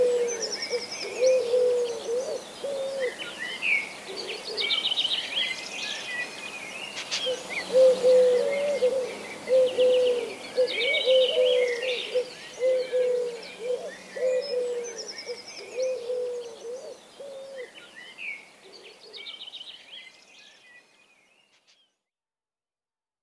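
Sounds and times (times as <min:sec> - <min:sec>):
Eurasian collared dove cooing: 0:00.0 - 0:04.8, 0:07.1 - 0:17.8
faint background hiss: 0:00.0 - 0:22.0
songbirds twittering: 0:00.0 - 0:22.0.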